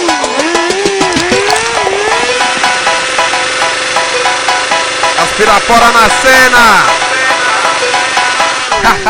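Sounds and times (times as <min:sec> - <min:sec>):
loud engine roaring and revving: 0:00.0 - 0:09.0
speech: 0:05.5 - 0:07.0, 0:08.8 - 0:09.0
laughter: 0:08.7 - 0:09.0.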